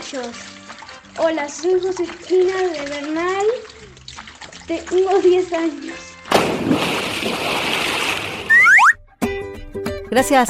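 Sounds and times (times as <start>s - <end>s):
running water from a tap as a girl washes her hands with soap: 0.0s - 6.3s
speech: 0.1s - 0.6s, 1.2s - 3.9s, 4.7s - 7.6s, 10.1s - 10.4s
rising boing-like chirps: 8.5s - 9.0s.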